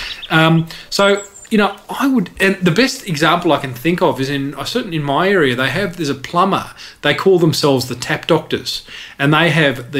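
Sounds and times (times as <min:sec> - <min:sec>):
harsh buzzy nasal bird calls played from a website: 0:00.0 - 0:02.2
speech: 0:00.3 - 0:09.9.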